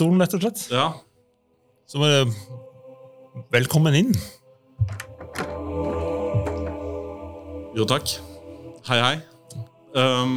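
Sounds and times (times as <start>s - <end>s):
speech: 0.0s - 1.1s, 1.9s - 2.6s, 3.4s - 5.1s, 7.8s - 10.3s
door shutting with a solid low thunk: 4.8s - 6.9s.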